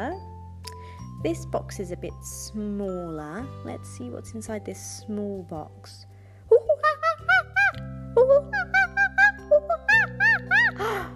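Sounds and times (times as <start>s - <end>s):
speech: 1.2s - 6.1s, 8.2s - 8.7s
voice imitating monkey calls: 6.5s - 10.7s.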